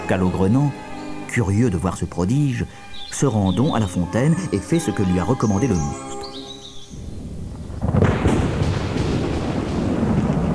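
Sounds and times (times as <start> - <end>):
loud buffeting wind in violent storm: 0.0 - 10.5
speech: 0.1 - 6.2
thunder rumbling: 6.8 - 10.5.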